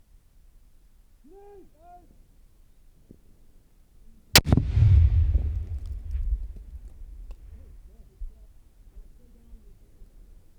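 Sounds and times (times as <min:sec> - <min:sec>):
high-explosive grenade explosions: 0:04.4 - 0:08.0.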